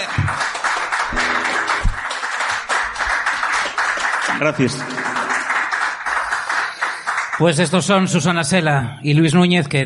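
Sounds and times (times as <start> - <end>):
loud sustained audience applause: 0.0 - 7.8
speech: 4.4 - 5.0, 7.4 - 9.8.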